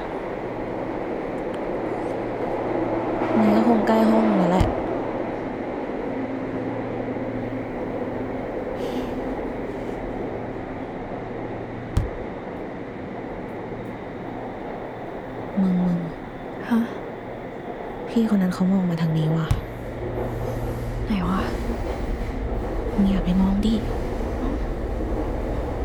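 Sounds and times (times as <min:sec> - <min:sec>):
subway train rumbling along the rails: 0:00.0 - 0:25.8
speech: 0:03.4 - 0:04.8, 0:18.2 - 0:19.6, 0:23.0 - 0:24.0
sharp clunk: 0:12.0 - 0:12.3, 0:19.5 - 0:20.2.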